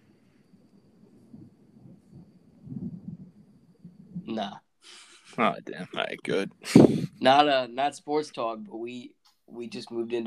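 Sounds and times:
storm thunder rumbling: 0:00.9 - 0:04.5
speech: 0:04.4 - 0:10.2.

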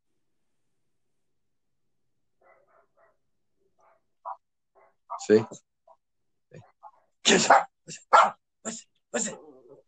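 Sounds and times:
recorded dog barks from a smart speaker: 0:02.4 - 0:05.6, 0:06.5 - 0:08.4
speech: 0:05.2 - 0:05.7, 0:07.3 - 0:09.5.

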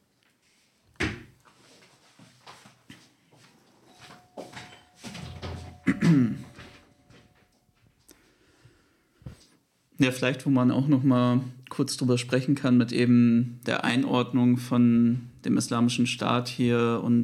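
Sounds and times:
front door clunk: 0:04.5 - 0:07.4
front door knocks and rattles as it is handled and opened: 0:05.0 - 0:06.9
speech: 0:06.0 - 0:06.5, 0:10.0 - 0:17.2.

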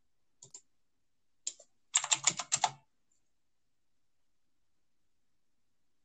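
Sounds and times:
typing on a computer keyboard: 0:00.4 - 0:00.7, 0:01.4 - 0:02.8.

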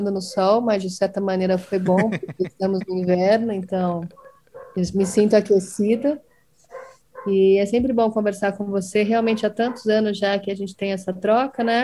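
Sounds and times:
neighbour's dog barking: 0:00.0 - 0:00.7, 0:04.1 - 0:07.4, 0:09.1 - 0:10.1, 0:11.5 - 0:11.8
speech: 0:00.0 - 0:04.2, 0:04.8 - 0:06.3, 0:07.2 - 0:11.8
laughter: 0:01.6 - 0:03.1.

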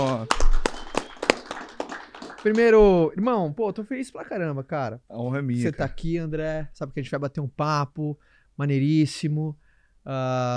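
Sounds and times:
scattered hand claps of a small group welcoming a guest: 0:00.0 - 0:03.0
speech: 0:02.4 - 0:10.5.

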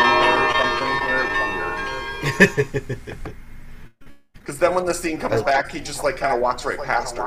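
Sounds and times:
bells ringing: 0:00.0 - 0:02.9
laughter: 0:02.2 - 0:03.4
speech: 0:02.4 - 0:03.4, 0:04.5 - 0:07.2.

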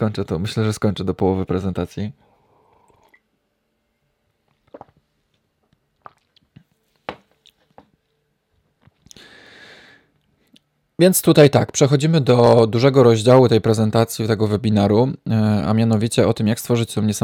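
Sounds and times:
speech: 0:00.0 - 0:02.2, 0:11.0 - 0:17.2
person quietly sipping coffee: 0:02.6 - 0:03.3, 0:04.5 - 0:05.1, 0:05.9 - 0:07.8
swallowing: 0:04.6 - 0:05.0, 0:06.0 - 0:06.7
small mouth clicks: 0:04.7 - 0:05.0.

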